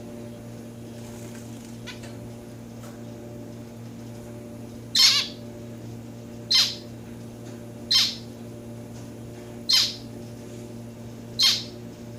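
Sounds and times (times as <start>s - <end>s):
faint hum: 0.0s - 12.1s
pet domestic society finch Lonchura striata domestica buzzy calls: 4.9s - 5.4s, 6.5s - 6.9s, 7.8s - 8.4s, 9.6s - 10.1s, 11.4s - 12.1s.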